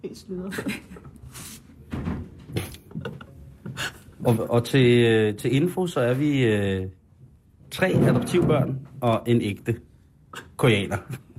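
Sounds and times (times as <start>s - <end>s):
speech: 0.0s - 1.6s, 4.2s - 7.0s, 7.7s - 11.2s
door pushed partly shut with knocks and scrapes: 7.8s - 8.9s.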